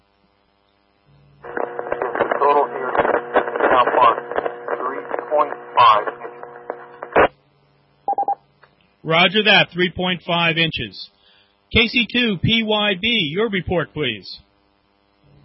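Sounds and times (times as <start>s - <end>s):
steady low electrical hum on a radio transmission: 0.0s - 15.4s
voice over narrowband radio transmission: 1.5s - 7.2s
speech: 9.1s - 14.5s.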